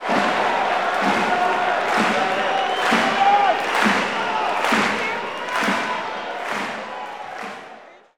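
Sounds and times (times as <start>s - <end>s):
basketball crowd chanting: 0.0s - 8.1s.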